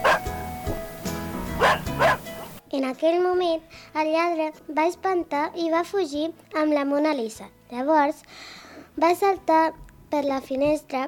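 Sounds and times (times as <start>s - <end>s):
dog barking: 0.0s - 0.8s, 1.6s - 2.6s
speech: 2.8s - 11.0s.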